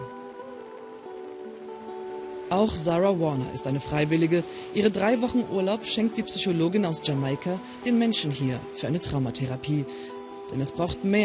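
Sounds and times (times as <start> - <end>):
rain falling on a hard surface during the rainy season: 0.0 - 11.2
speech: 2.5 - 11.2.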